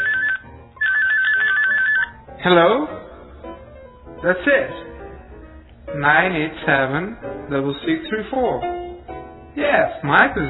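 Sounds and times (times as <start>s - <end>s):
cell phone ringtone electronic trill: 0.0s - 2.1s
speech: 2.4s - 3.0s, 4.2s - 4.9s, 5.9s - 8.8s, 9.6s - 10.4s.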